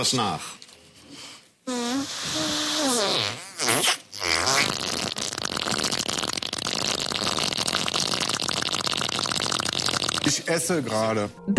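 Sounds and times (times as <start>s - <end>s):
speech: 0.0s - 0.6s, 3.7s - 4.0s, 10.5s - 11.5s
woman blowing raspberry fart noises with her mouth: 1.7s - 10.3s.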